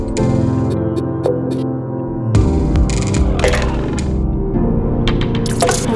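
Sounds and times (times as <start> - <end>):
modern glitchy piano logo: 0.2 - 5.9.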